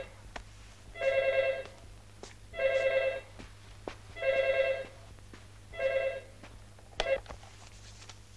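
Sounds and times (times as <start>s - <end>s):
telephone ringing with electronic trill: 1.0s - 1.8s, 2.6s - 3.3s, 4.2s - 5.0s, 5.7s - 6.4s, 7.0s - 7.3s.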